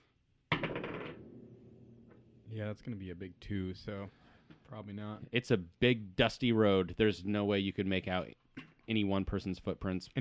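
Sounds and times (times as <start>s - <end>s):
d20 die rolling on a hard tabletop: 0.5s - 2.2s
speech: 2.5s - 10.1s.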